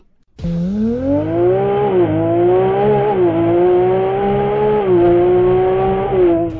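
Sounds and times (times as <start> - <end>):
Ferrari sports car engine revving: 0.4 - 6.5.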